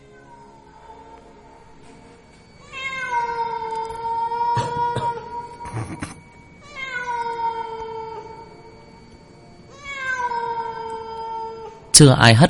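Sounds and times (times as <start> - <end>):
cat meowing: 2.6 - 6.0, 6.6 - 8.5, 9.7 - 11.9
speech: 12.0 - 12.4.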